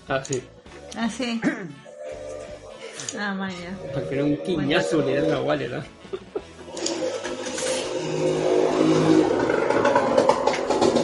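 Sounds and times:
speech: 0.1 - 1.9, 3.1 - 6.3
laughter: 5.7 - 6.6
large motorcycle engine revving outside: 6.8 - 11.0.

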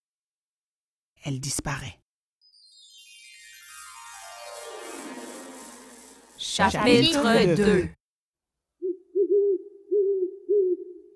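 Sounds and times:
speech: 1.2 - 2.0, 6.4 - 8.0
owl hooting: 8.8 - 11.1.

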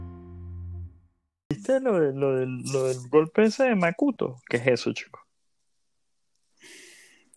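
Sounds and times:
speech: 1.5 - 5.2
loud breath blown into a microphone: 6.6 - 7.3.

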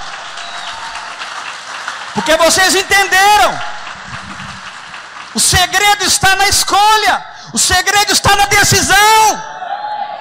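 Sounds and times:
audience applauding: 0.0 - 7.1
speech: 2.2 - 3.8, 5.4 - 9.5.

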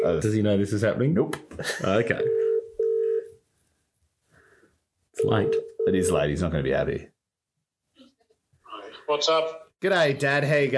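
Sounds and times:
quiet noise: 0.0 - 10.7
speech: 0.1 - 2.4, 5.2 - 7.1, 9.1 - 10.7
telephone dialing beep: 2.2 - 3.3.

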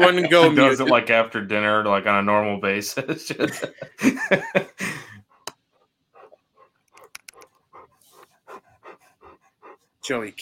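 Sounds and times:
laughter: 0.0 - 1.5, 3.0 - 5.2
speech: 0.0 - 5.1, 10.1 - 10.4
dog panting: 5.2 - 10.1.

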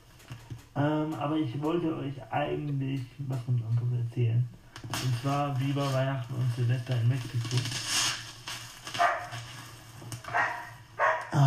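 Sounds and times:
speech: 0.8 - 7.9
dog barking: 9.0 - 9.4, 10.3 - 11.4.

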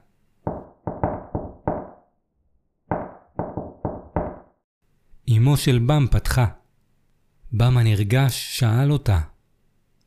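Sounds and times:
loud forceful knocks on a wooden front entrance door of a house: 0.5 - 2.0, 2.9 - 4.6
speech: 5.3 - 6.6, 7.5 - 9.3.

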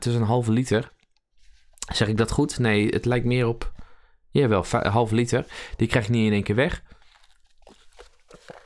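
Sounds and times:
speech: 0.0 - 1.0, 1.9 - 6.9
cardboard drink carton crumpling: 6.9 - 8.6.

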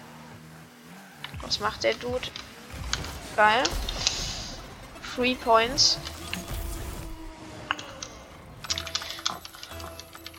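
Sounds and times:
speech: 1.4 - 4.2, 5.2 - 6.2
plastic game controller buttons clicking: 8.7 - 10.3.

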